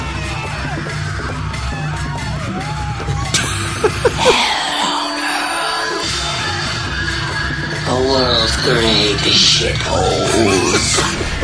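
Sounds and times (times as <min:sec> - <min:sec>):
loud chaotic theme music: 0:00.0 - 0:11.4
laughter: 0:02.8 - 0:05.5, 0:10.3 - 0:11.4
speech: 0:08.6 - 0:11.4.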